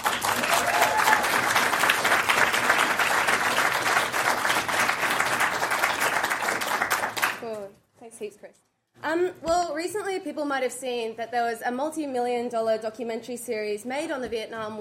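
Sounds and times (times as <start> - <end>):
room full of people on a university campus applauding a speaker: 0.0 - 7.4
speech: 8.4 - 14.8.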